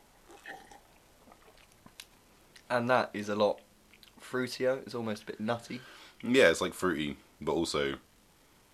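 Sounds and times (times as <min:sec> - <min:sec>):
person sipping beer: 0:00.3 - 0:01.9
speech: 0:02.7 - 0:03.6, 0:04.3 - 0:08.1.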